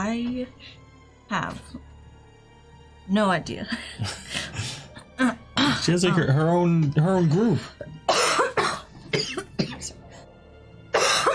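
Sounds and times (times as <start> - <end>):
speech: 0.1 - 1.9, 3.1 - 8.3, 9.2 - 10.0
harsh coughing from chalk dust caught in the throat: 4.0 - 6.4, 7.7 - 10.1, 10.9 - 11.3.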